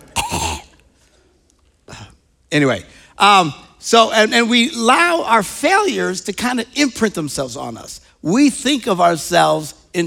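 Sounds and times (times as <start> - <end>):
person coughing into a microphone: 0.0 - 0.8
speech: 2.5 - 10.0.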